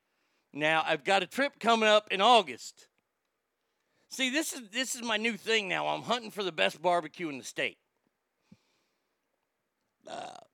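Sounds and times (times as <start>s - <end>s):
speech: 0.5s - 2.9s, 4.1s - 7.8s, 10.0s - 10.4s
person burping: 10.0s - 10.5s.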